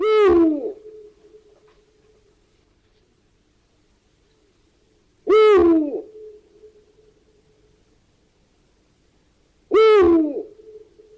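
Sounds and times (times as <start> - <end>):
Eurasian eagle-owl hooting: 0.0 - 2.2, 5.2 - 7.2, 9.7 - 11.1.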